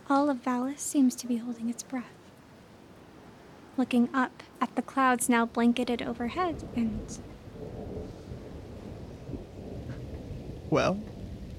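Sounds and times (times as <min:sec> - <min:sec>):
steady rain pouring down: 0:00.0 - 0:11.5
speech: 0:00.1 - 0:02.2, 0:03.8 - 0:07.4, 0:10.7 - 0:11.1
deep continuous rumble of thunder: 0:05.5 - 0:11.5.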